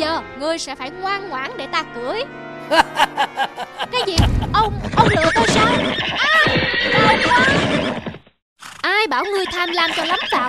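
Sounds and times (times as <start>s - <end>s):
speech: 0.0s - 8.1s, 8.8s - 10.4s
laughter: 2.7s - 5.5s
horse neighing: 4.8s - 10.4s.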